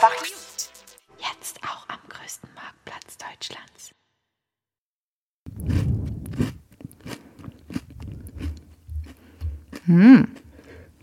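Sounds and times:
crunching and chewing of chocolate crisps being eaten: 5.5s - 10.7s
speech: 9.9s - 10.4s.

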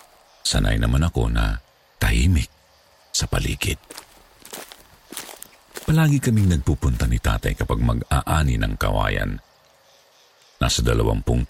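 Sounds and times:
crunchy footsteps of a person walking on a mountain path: 0.0s - 0.3s, 3.7s - 7.7s
speech: 0.5s - 2.6s, 3.2s - 4.0s, 5.9s - 9.4s, 10.6s - 11.4s.

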